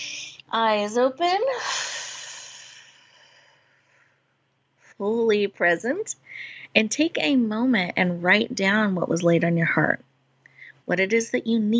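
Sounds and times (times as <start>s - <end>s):
speech: 0.5s - 1.8s, 5.0s - 10.1s, 10.9s - 11.7s
long airy breath: 1.6s - 4.3s.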